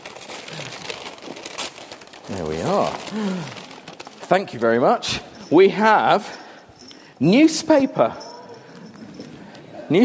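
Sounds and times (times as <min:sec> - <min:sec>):
brown paper wrapping torn off a parcel: 0:00.0 - 0:04.7
speech: 0:02.3 - 0:03.6, 0:04.3 - 0:06.4, 0:07.2 - 0:08.3.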